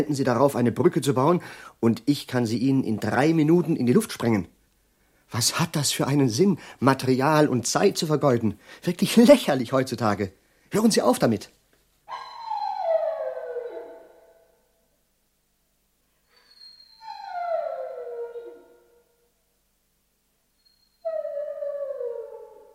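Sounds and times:
speech: 0.0 - 4.6, 5.3 - 12.2
dog howling mournfully: 12.1 - 14.5, 16.6 - 19.0, 21.0 - 22.7.

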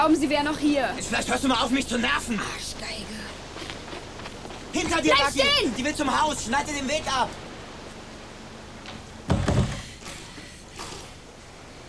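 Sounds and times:
speech: 0.0 - 3.2, 4.7 - 7.4
door closing with a low thump: 8.9 - 9.9.

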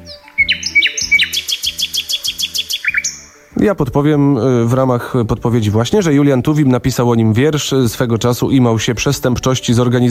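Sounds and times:
nightingale singing: 0.0 - 3.6
speech: 3.6 - 10.0.

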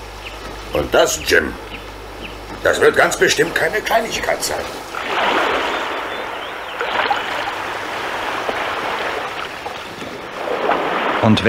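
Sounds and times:
speech: 0.7 - 1.7, 2.6 - 5.2, 11.2 - 11.4
sea waves rushing against the shore: 3.1 - 11.4.

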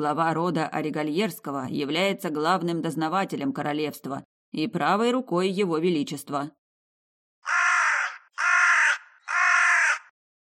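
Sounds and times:
speech: 0.0 - 6.6
crow cawing: 7.4 - 10.2.

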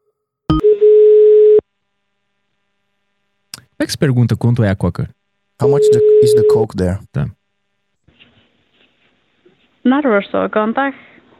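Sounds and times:
telephone ringing tone on a call to a bar in Iceland: 0.5 - 1.6, 5.6 - 6.7
speech: 3.9 - 7.4, 9.8 - 11.1.

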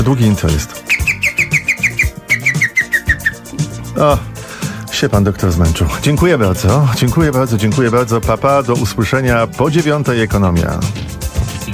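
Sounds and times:
speech: 0.0 - 1.0, 4.0 - 4.3, 4.9 - 11.0
low rhythmic background: 0.0 - 11.7
green woodpecker call: 0.8 - 3.5.

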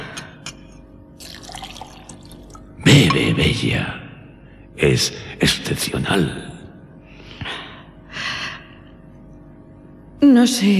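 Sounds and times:
water pouring into a glass: 1.2 - 2.7
speech: 3.1 - 4.0, 4.8 - 6.5, 10.2 - 10.7.

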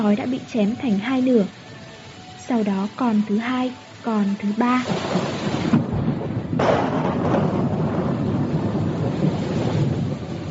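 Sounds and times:
speech: 0.0 - 1.6, 2.5 - 5.3
rain-like hiss: 0.0 - 10.4
rolling thunder on a dark night: 4.8 - 10.4.

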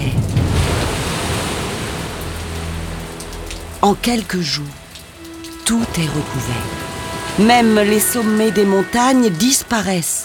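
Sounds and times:
heavy raindrops drumming on the roof of an ark: 0.0 - 6.2
speech: 3.8 - 4.8, 5.7 - 6.8, 7.4 - 10.2.

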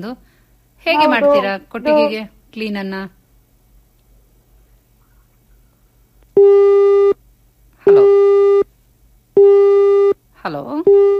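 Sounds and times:
speech: 0.0 - 3.2, 10.4 - 11.1
telephone busy tone after a call cuts off: 6.4 - 7.2, 7.9 - 8.7, 9.4 - 10.2, 10.9 - 11.1.

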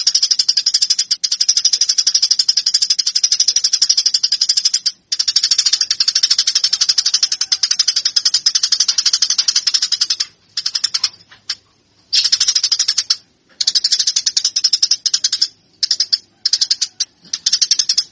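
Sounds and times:
Eurasian tree sparrow giving sharp high chirps: 0.0 - 18.1.

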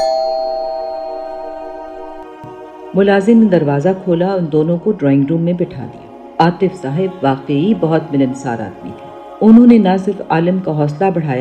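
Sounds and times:
house doorbell ringing: 0.0 - 2.4
speech: 2.4 - 11.3.

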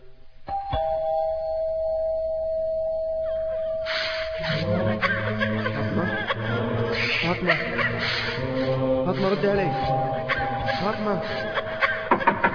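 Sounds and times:
house doorbell ringing with a clear electronic tone: 0.5 - 4.4
people chuckling and laughing: 4.4 - 12.5
speech: 9.2 - 11.6.

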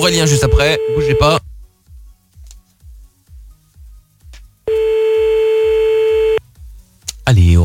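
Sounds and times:
telephone line tone while a call is being placed: 0.0 - 1.4, 4.7 - 6.4
speech: 0.0 - 1.5, 7.3 - 7.6.

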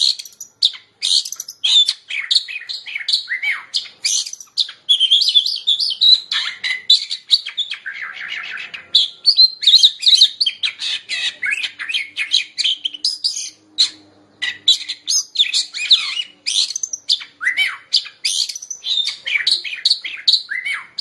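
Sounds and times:
Oriental magpie-robin song: 0.0 - 20.9.

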